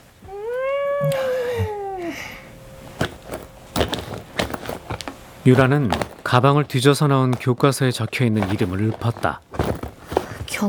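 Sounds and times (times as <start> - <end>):
rustling: 0.0 - 10.6
cat meowing: 0.2 - 2.8
speech: 1.0 - 1.3, 5.5 - 9.5.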